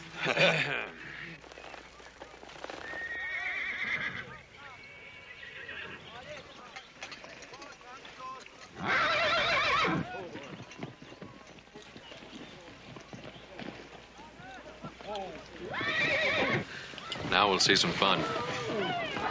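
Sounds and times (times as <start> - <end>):
laughter: 0.0 - 1.2
horse hooves clip-clopping during a riding lesson: 0.0 - 19.3
speech: 0.2 - 0.9, 17.6 - 18.4
horse neighing during a riding lesson: 2.8 - 6.2, 8.7 - 10.2, 15.6 - 17.2.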